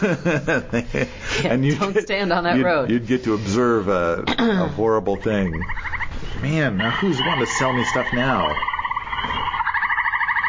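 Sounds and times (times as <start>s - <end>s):
laughter: 0.0s - 2.1s
speech: 0.0s - 9.4s
Amazon frog croaking as a phone ringtone: 5.4s - 10.4s.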